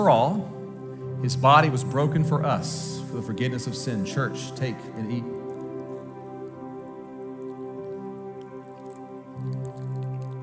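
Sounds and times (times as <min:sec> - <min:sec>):
speech: 0:00.0 - 0:00.6, 0:01.2 - 0:05.4
soft sustained musical tones: 0:00.0 - 0:10.4
liquid poured into a small communion cup during church communion: 0:05.0 - 0:10.4.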